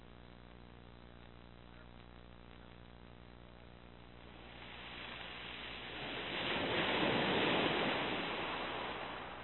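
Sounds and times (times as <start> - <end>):
wind over the sea: 0.0 - 9.4
rolling sea waves: 4.2 - 9.4.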